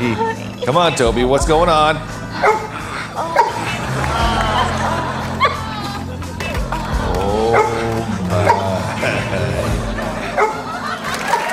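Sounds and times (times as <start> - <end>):
speech: 0.0 - 3.3
laughter: 0.0 - 11.5
dog barking and whimpering: 2.3 - 3.8, 7.4 - 8.8, 10.3 - 10.8.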